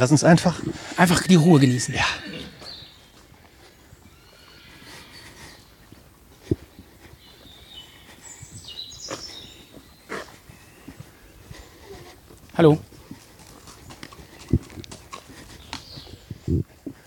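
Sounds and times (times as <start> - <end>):
speech: 0.0 - 2.3, 12.6 - 12.9
faint birdsong: 0.0 - 17.0
ridden horse trotting on a path: 0.0 - 17.0
person calling out a greeting: 0.4 - 2.7.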